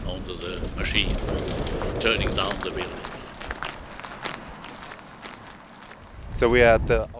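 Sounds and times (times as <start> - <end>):
scraping knocks: 0.0 - 6.2
demolition machinery grinding and rumbling while tearing down a building: 0.0 - 7.0.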